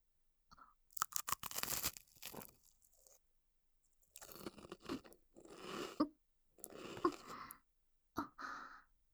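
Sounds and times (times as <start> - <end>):
person chewing food with crisp crunching: 1.0 - 3.2, 4.1 - 6.0, 6.6 - 7.4.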